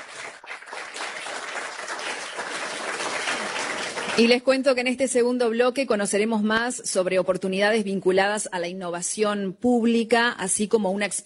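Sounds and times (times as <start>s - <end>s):
audience applause welcoming speakers: 0.0s - 4.4s
speech: 4.2s - 11.2s.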